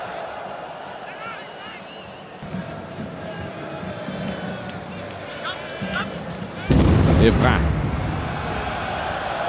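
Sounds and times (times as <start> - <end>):
steady roar of a stadium crowd: 0.0 - 9.4
dull heavy bomb explosion outside a stadium: 6.7 - 8.9
commentator speaking: 7.2 - 7.7
speech: 7.2 - 7.7.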